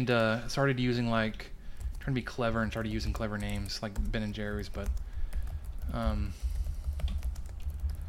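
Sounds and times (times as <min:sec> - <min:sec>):
speech: 0:00.0 - 0:05.1, 0:05.9 - 0:06.5
typing on a computer keyboard: 0:01.8 - 0:08.0.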